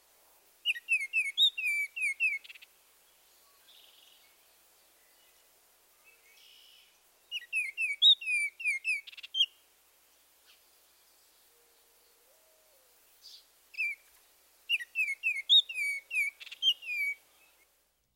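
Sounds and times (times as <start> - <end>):
faint soft bird notes: 0.6 - 18.1
Baltimore Oriole whistled song: 0.7 - 2.5, 7.3 - 9.5, 14.7 - 17.2.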